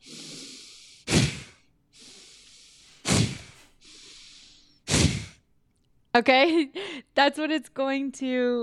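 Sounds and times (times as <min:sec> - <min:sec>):
soft long breathy inhale: 0:00.0 - 0:04.9
sharp forceful exhales through the nose in a breathing exercise: 0:00.0 - 0:05.4
speech: 0:06.1 - 0:08.6.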